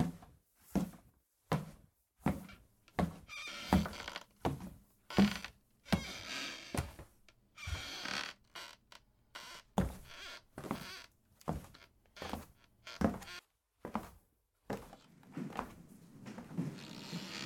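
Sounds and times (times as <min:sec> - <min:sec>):
footsteps on wooden floorboards of an old house: 0:00.0 - 0:17.4
old wooden floorboards creaking and groaning: 0:03.2 - 0:04.3, 0:05.1 - 0:07.0, 0:07.6 - 0:13.4, 0:16.5 - 0:17.4.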